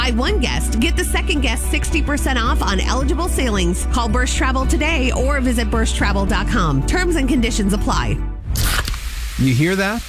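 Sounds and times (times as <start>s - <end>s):
speech: 0.0s - 8.3s, 9.4s - 10.0s
zero-sugar cola opening with a fizzing hiss: 8.5s - 10.0s.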